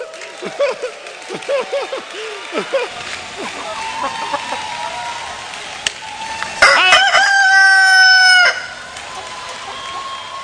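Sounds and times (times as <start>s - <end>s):
laughter: 0.0s - 5.5s, 8.8s - 10.4s
crowd imitating a rooster crow: 2.6s - 10.4s.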